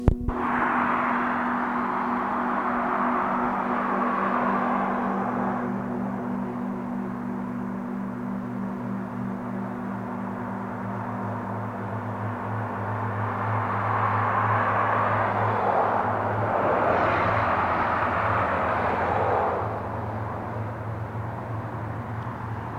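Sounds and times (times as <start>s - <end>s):
calm waves: 0.3s - 22.7s.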